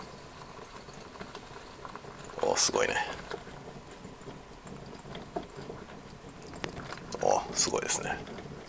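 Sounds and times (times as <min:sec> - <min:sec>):
water boiling and bubbling in a pot over high heat: 0:00.0 - 0:08.6
speech: 0:02.6 - 0:03.3, 0:07.6 - 0:08.5.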